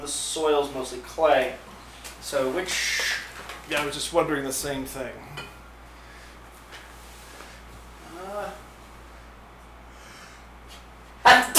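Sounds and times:
faint room hum: 0.0s - 11.5s
speech: 0.1s - 3.1s, 3.7s - 5.4s
man sneezing: 11.2s - 11.5s.

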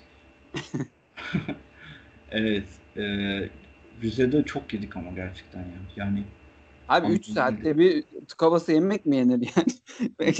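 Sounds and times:
coughing held back: 0.6s - 3.5s, 7.1s - 7.5s
laughter: 0.6s - 6.2s, 6.9s - 8.2s
speech: 0.7s - 1.7s, 2.3s - 10.3s.

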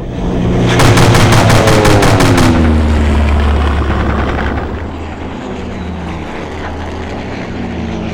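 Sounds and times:
seaplane propeller engine droning: 0.0s - 8.1s
rapid burst of machine gun fire: 0.8s - 4.6s.

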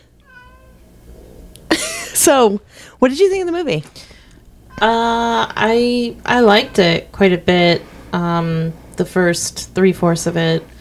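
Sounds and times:
low steady room rumble: 0.0s - 10.8s
cat meowing: 0.2s - 0.8s, 4.7s - 5.2s
speech: 2.2s - 4.1s, 4.8s - 10.7s.

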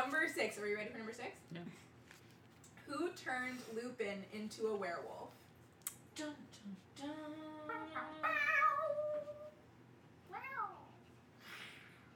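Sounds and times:
speech: 0.3s - 2.0s, 2.9s - 5.4s, 6.2s - 8.5s
person imitating cat meows: 7.8s - 9.5s.

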